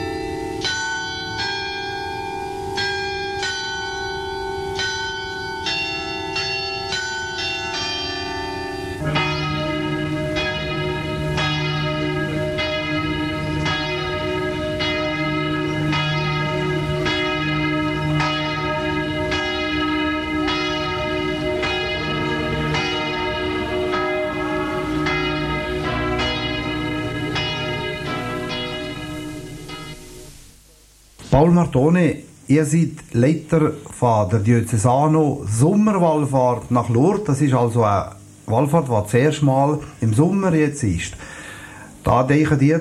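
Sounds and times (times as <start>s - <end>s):
church bells of Lourdes ringing: 0.0s - 30.5s
speech: 31.4s - 41.3s, 42.0s - 42.7s.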